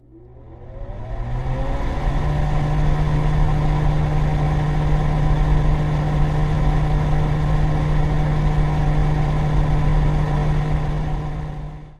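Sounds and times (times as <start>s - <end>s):
fan starting up: 0.0s - 11.8s.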